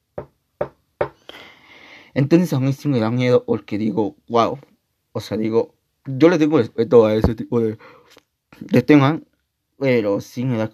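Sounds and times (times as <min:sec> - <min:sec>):
sharp knocks on a patio door: 0:00.2 - 0:01.2
speech: 0:02.2 - 0:10.7.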